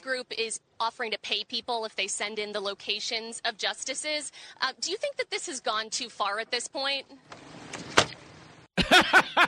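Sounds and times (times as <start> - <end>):
speech: 0.0 - 7.8, 8.9 - 9.4
door slamming: 7.3 - 8.2
laughter: 8.8 - 9.4.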